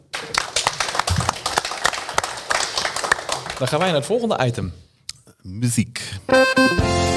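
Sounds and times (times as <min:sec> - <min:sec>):
applause from a small group: 0:00.0 - 0:04.0
speech: 0:03.6 - 0:04.8, 0:05.4 - 0:07.0.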